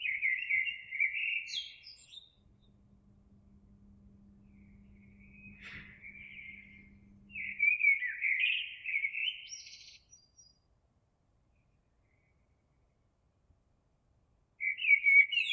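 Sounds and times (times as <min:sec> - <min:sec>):
Eurasian blackbird singing: 0:00.0 - 0:10.5, 0:14.6 - 0:15.5
steady low hum: 0:02.3 - 0:08.0.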